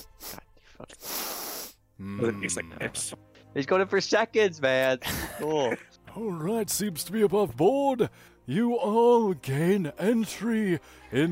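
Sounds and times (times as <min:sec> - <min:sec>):
voice mimicking a long loud nasal sniff of a cup: 0:00.0 - 0:01.8
speech: 0:02.0 - 0:11.3.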